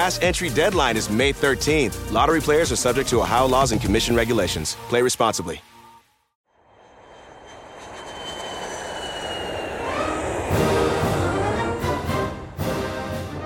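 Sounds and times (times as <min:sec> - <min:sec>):
speech: 0:00.0 - 0:05.7
jet plane engines whining and roaring while taxiing down a runway: 0:06.6 - 0:13.4.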